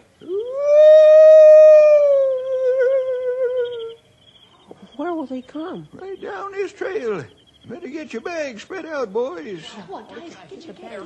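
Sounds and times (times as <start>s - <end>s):
person imitating an owl hoot as a signal: 0.2s - 4.0s
speech: 5.3s - 11.0s.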